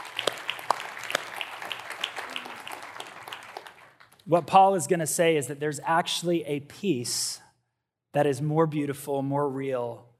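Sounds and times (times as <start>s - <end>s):
audience applauding with many hands clapping: 0.0s - 4.3s
speech: 4.3s - 7.4s, 8.1s - 10.1s.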